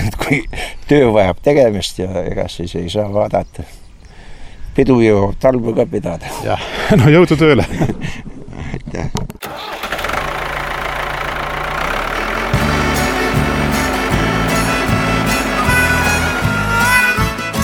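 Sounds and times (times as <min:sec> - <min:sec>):
speech: 0:00.3 - 0:03.8, 0:04.8 - 0:10.0
tractor engine cranking and rumbling: 0:09.4 - 0:17.6.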